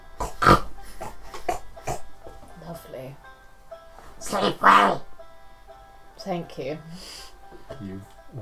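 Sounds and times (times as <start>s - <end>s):
pigs grunting while wallowing in mud: 0.0s - 2.2s, 4.2s - 5.1s
speech: 4.3s - 5.1s, 6.2s - 7.2s, 7.8s - 8.4s.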